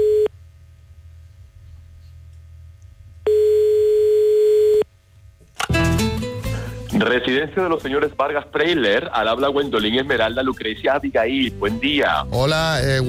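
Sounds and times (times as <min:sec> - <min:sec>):
telephone ringback tone after dialing a call to a private residence: 0:00.0 - 0:00.3, 0:03.3 - 0:04.8
person answering phone: 0:03.3 - 0:04.8
speech: 0:07.0 - 0:13.0.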